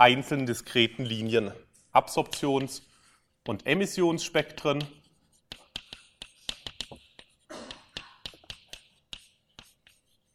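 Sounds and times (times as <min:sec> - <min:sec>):
speech: 0:00.0 - 0:05.0
writing on a board during a physics lecture: 0:02.2 - 0:10.3.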